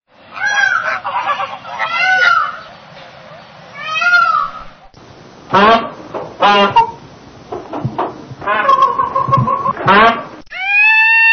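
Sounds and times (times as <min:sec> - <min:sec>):
rough background hiss: 0:00.1 - 0:11.3
Indian peafowl giving nasal meowing calls: 0:00.3 - 0:04.9, 0:05.5 - 0:07.0, 0:08.4 - 0:11.3.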